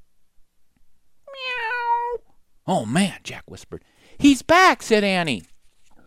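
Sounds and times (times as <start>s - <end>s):
cat meowing down a dark hallway: 1.3s - 2.2s
speech: 2.7s - 5.5s.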